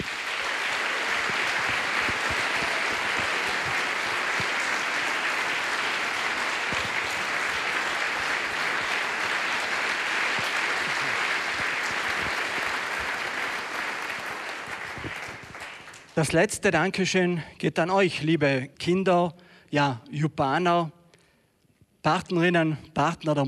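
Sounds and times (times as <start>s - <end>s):
large audience applauding in a concert hall: 0.0s - 16.3s
speech: 16.2s - 21.0s, 22.0s - 23.4s.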